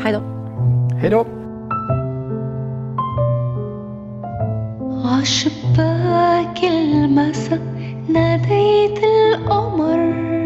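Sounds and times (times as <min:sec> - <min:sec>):
speech: 0:00.0 - 0:00.4, 0:01.0 - 0:01.4, 0:05.1 - 0:10.3
melodic instrumental film theme music: 0:00.0 - 0:06.2.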